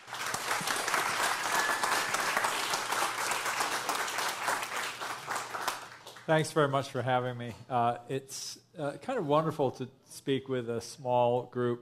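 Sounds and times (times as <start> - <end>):
audience applause welcoming a speaker to a book talk: 0.0 - 6.4
speech: 6.3 - 11.8.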